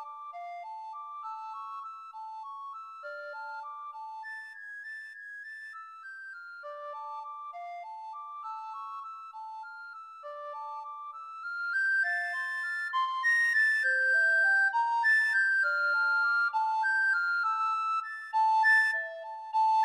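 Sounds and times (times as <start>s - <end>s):
recorder duet: 10.6s - 19.8s.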